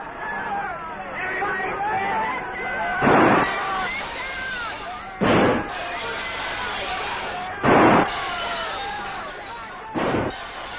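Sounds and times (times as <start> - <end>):
murmur of crowd chatter: 0.0 - 10.7
gunshots fired at apartment windows: 3.0 - 3.9, 5.2 - 5.8, 7.6 - 8.3, 10.0 - 10.5.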